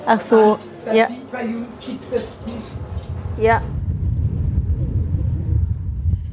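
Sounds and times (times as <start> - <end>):
speech: 0.0 - 3.8
strong wind buffeting the microphone while travelling along a road: 1.8 - 6.3.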